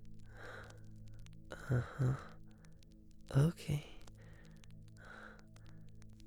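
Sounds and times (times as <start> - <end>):
person exhaling a breathy sigh while stretching: 1.5 - 2.3
speech: 1.6 - 2.3, 3.3 - 3.9.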